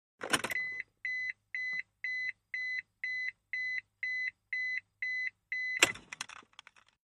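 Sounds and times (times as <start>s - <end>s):
1998 Mitsubishi Montero key beeps in the interior: 0.4s - 6.0s.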